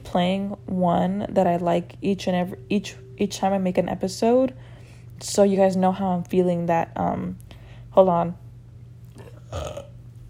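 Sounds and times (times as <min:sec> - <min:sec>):
speech: 0:00.1 - 0:07.4, 0:08.0 - 0:08.4
short low burp: 0:09.2 - 0:10.0.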